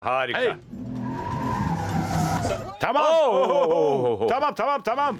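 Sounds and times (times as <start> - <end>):
speech: 0.3 - 0.9, 1.5 - 5.1
steady road noise: 0.4 - 2.8
car engine roaring while accelerating: 0.6 - 2.7
car tires squealing through a curve: 0.7 - 2.8
laughter: 3.0 - 4.5.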